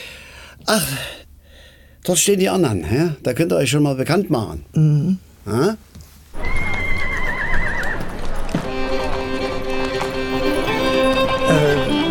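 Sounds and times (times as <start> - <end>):
speech: 0.7 - 1.2, 2.0 - 6.0
faint hoof clip-clop: 6.4 - 12.0
horses neighing and whinnying in a paddock: 6.4 - 12.0.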